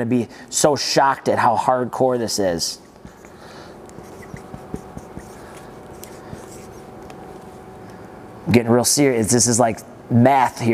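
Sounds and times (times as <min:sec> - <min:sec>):
speech: 0:00.0 - 0:02.9, 0:08.5 - 0:10.7
steady low hum: 0:00.0 - 0:10.7
marker writing on a dry erase board: 0:02.9 - 0:07.5.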